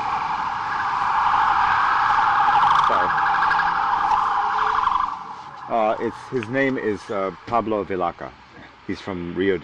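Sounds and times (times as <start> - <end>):
police siren wailing with rapid warbling pitch: 0.0 - 7.4
speech: 5.7 - 9.6.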